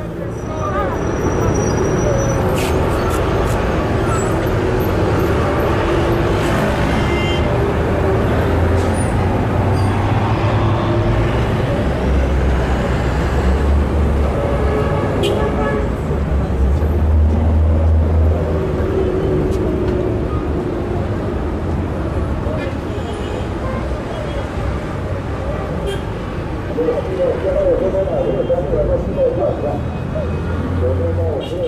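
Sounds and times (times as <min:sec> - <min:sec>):
dense continuous city street traffic: 0:00.0 - 0:31.6.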